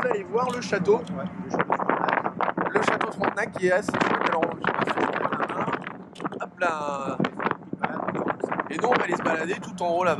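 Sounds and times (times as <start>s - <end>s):
speech: 0.0s - 1.9s, 2.7s - 5.2s, 6.6s - 7.3s, 8.7s - 10.1s
ferry engine rumbling while crossing river: 0.0s - 10.1s.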